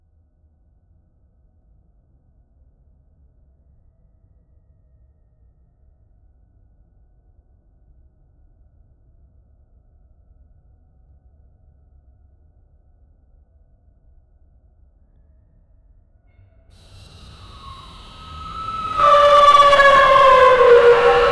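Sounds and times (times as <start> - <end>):
horror movie sounds: 16.9 - 21.3.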